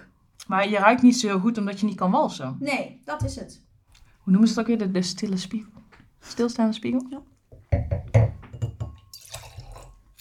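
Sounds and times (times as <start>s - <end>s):
speech: 0.5s - 8.1s
white wine poured into a wine glass: 9.0s - 10.1s.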